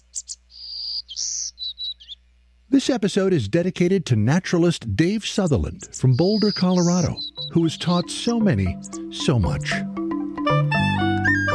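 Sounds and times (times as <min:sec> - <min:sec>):
songbird singing: 0:00.0 - 0:02.4, 0:04.5 - 0:10.4
speech: 0:02.7 - 0:10.7.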